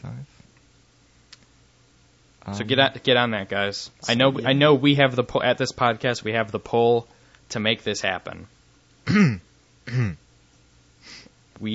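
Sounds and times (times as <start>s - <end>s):
speech: 2.5s - 10.2s, 11.0s - 11.7s
throat clearing: 9.1s - 10.2s.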